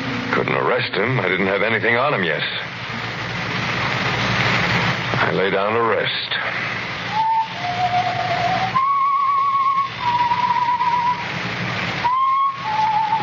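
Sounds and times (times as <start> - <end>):
steady rain-like hiss: 0.0 - 13.2
speech: 0.5 - 3.0, 5.2 - 6.7
person whistling a slow tune: 7.1 - 11.2, 12.0 - 13.2.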